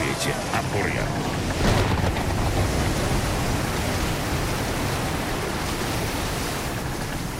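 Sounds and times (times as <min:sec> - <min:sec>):
rushing wind at sea: 0:00.0 - 0:07.3
storm waves crashing against the bow of a ship: 0:00.0 - 0:07.3
speech: 0:00.2 - 0:01.4.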